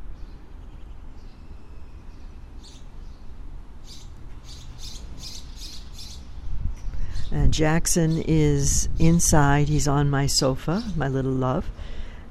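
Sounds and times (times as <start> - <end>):
various kinds of birds tweeting in short chirps: 0.0 - 11.6
wind blowing gently: 0.0 - 12.2
low rumble of traffic from Route 9: 2.4 - 12.2
speech: 7.3 - 11.8.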